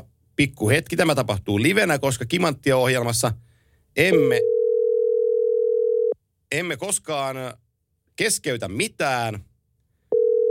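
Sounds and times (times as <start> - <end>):
speech: 0.0 - 4.5, 6.5 - 7.6, 8.2 - 9.5
telephone dial tone after a dropped phone call: 4.4 - 6.2, 10.1 - 10.4.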